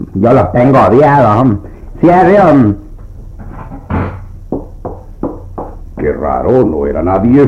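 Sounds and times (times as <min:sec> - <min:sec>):
speech: 0:00.2 - 0:02.8, 0:06.2 - 0:07.4
knocking on a door as a prank: 0:03.4 - 0:06.2.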